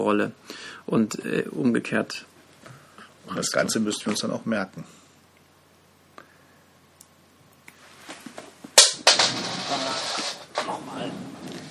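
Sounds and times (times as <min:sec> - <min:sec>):
speech: 0:00.0 - 0:02.3, 0:03.3 - 0:05.0
coin clattering and rattling on a hard surface: 0:08.8 - 0:10.6.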